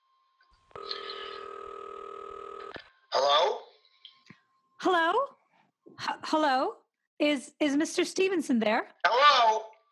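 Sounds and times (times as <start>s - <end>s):
faint hum: 0.0s - 5.5s
telephone line ringing: 0.7s - 2.8s
speech: 6.3s - 9.0s.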